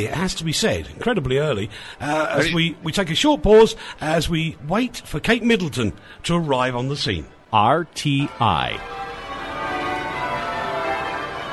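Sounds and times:
speech: 0.0 - 9.0
church bells of a cathedral pealing during a royal wedding: 8.3 - 11.5.

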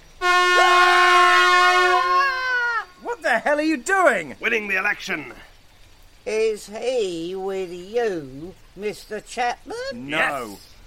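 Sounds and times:
air horn blast: 0.2 - 2.4
speech: 3.6 - 5.5, 6.3 - 10.7.

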